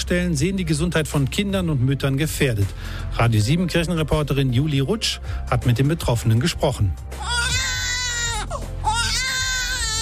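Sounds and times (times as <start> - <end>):
speech: 0.1 - 7.6
baby crying: 7.2 - 10.0.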